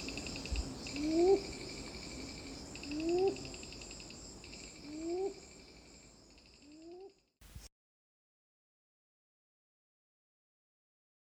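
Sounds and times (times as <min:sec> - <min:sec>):
insects trilling: 0:00.0 - 0:07.2
red-billed ground cuckoo calling with low upslurred hoots: 0:00.8 - 0:01.7, 0:02.9 - 0:03.6.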